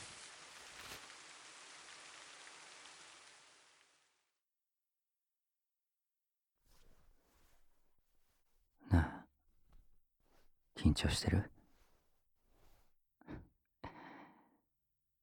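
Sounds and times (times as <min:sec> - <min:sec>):
light rain falling: 0:00.0 - 0:04.2
speech: 0:10.8 - 0:11.6.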